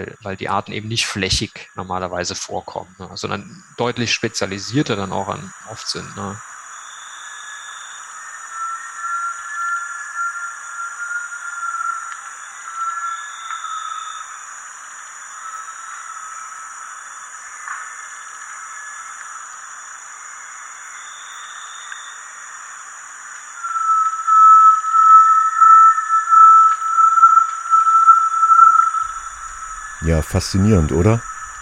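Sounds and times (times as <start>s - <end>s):
speech: 0.0s - 6.5s, 30.1s - 31.3s
high insect hiss: 0.0s - 31.6s
great tinamou whistling calls: 8.3s - 14.2s, 23.6s - 31.6s.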